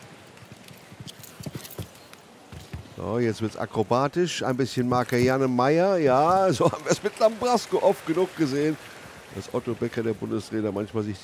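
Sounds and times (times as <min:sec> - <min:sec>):
horse hooves thudding on arena ground during an equestrian competition: 0:00.0 - 0:03.6
speech: 0:03.0 - 0:11.2.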